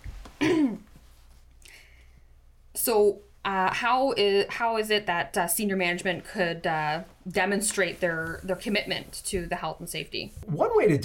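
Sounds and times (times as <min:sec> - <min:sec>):
person clearing throat: 0:00.4 - 0:00.9
speech: 0:02.8 - 0:11.0.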